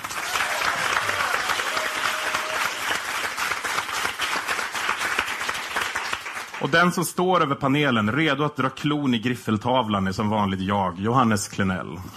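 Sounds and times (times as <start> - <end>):
audience applause for a panelist being introduced: 0.0 - 7.0
speech: 6.6 - 12.1.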